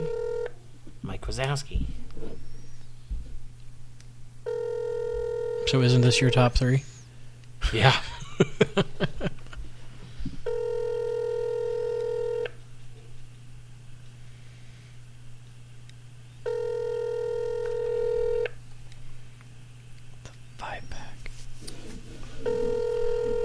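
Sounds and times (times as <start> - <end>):
phone call ringback tones on the line: 0.0 - 0.6, 4.5 - 6.2, 10.5 - 12.6, 16.4 - 18.6, 22.4 - 23.4
constant low electrical hum: 0.0 - 23.4
speech: 1.3 - 2.0, 5.7 - 6.9, 7.7 - 9.1
laughter: 7.6 - 9.6.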